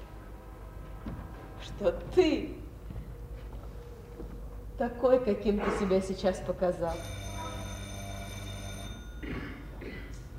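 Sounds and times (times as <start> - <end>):
speech: 1.6 - 2.6, 4.8 - 7.2
telephone bell ringing: 6.9 - 9.3.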